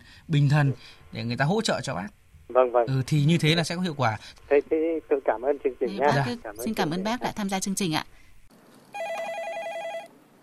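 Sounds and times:
hiss: 0:00.0 - 0:09.0
speech: 0:00.3 - 0:08.2
telephone ringing for an incoming call: 0:09.0 - 0:10.1.

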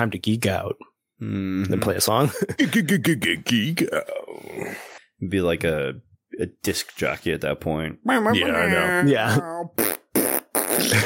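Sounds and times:
speech: 0:00.0 - 0:10.0
loud buzzy sputtering fart: 0:09.8 - 0:11.0.

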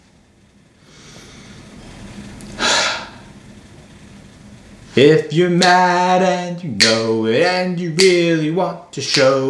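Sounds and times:
quiet hiss: 0:00.0 - 0:09.4
deep breath: 0:00.8 - 0:03.4
speech: 0:05.0 - 0:09.4.

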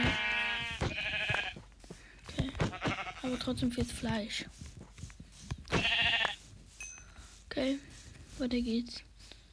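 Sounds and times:
sheep bleating: 0:00.0 - 0:01.6, 0:02.6 - 0:03.3, 0:05.7 - 0:06.4
speech: 0:03.3 - 0:04.6, 0:07.6 - 0:09.1.

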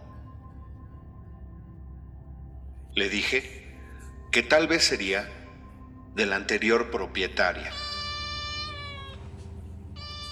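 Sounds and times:
low rumble: 0:00.0 - 0:10.3
speech: 0:03.0 - 0:03.6, 0:04.4 - 0:05.4, 0:06.2 - 0:07.8
cat meowing softly: 0:07.6 - 0:09.4, 0:10.0 - 0:10.3.

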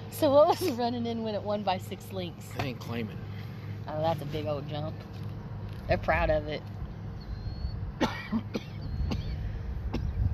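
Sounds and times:
speech: 0:00.2 - 0:03.2, 0:03.9 - 0:05.2, 0:05.9 - 0:06.8, 0:08.3 - 0:08.7
short dry coughs: 0:08.0 - 0:09.4, 0:09.9 - 0:10.2.

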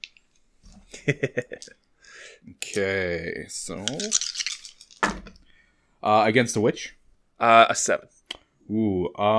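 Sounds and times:
speech: 0:01.0 - 0:04.3, 0:06.0 - 0:09.3
handful of dice rolled across a hard surface in a game: 0:03.7 - 0:05.4.

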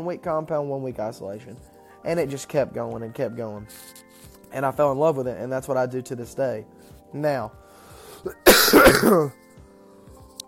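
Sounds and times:
speech: 0:00.0 - 0:07.6, 0:08.2 - 0:09.4
person coughing with lingering cough: 0:08.3 - 0:09.4
throat clearing: 0:08.4 - 0:09.4.

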